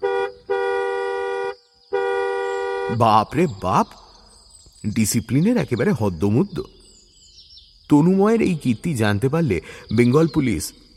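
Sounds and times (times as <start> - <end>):
department car horn honking: 0.0 - 3.5
speech: 2.9 - 4.0, 4.8 - 6.8, 7.9 - 10.9.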